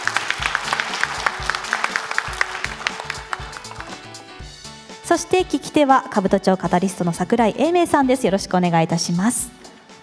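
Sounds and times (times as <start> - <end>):
audience applause: 0.0 - 4.2
speech: 5.2 - 9.6.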